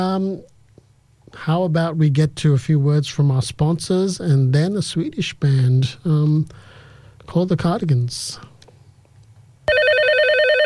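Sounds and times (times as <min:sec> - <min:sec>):
speech: 0:00.0 - 0:00.6, 0:01.3 - 0:06.7, 0:07.3 - 0:08.5
telephone bell ringing with a metallic trill: 0:09.7 - 0:10.6.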